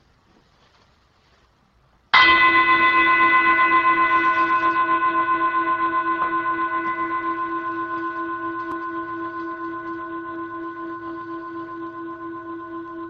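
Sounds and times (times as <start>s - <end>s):
meditation bell ringing: 2.1s - 13.0s.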